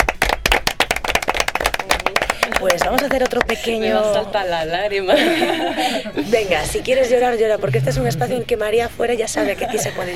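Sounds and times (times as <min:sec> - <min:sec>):
applause from a small group at a support association gathering: 0:00.0 - 0:03.8
speech: 0:02.6 - 0:10.1
laughter: 0:05.1 - 0:06.5, 0:09.3 - 0:10.1.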